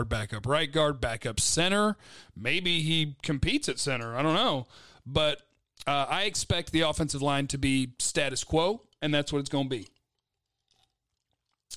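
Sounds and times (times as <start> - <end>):
speech: 0.0 - 9.9
person sipping an energy drink: 9.8 - 11.7
wet mouth clicks: 9.8 - 11.7.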